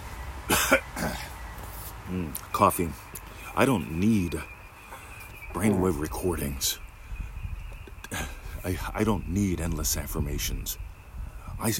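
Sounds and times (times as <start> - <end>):
person clearing throat: 0.5 - 1.3
speech: 0.7 - 0.9, 2.1 - 4.5, 5.6 - 6.8, 8.6 - 10.9, 11.6 - 11.7.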